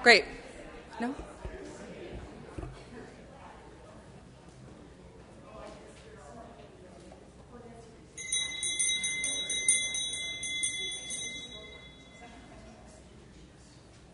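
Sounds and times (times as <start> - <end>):
speech: 0.0 - 0.4, 1.0 - 1.3
low murmur of voices: 0.0 - 14.1
room noise: 0.0 - 14.1
bright bell ringing as a reminder: 8.2 - 12.4.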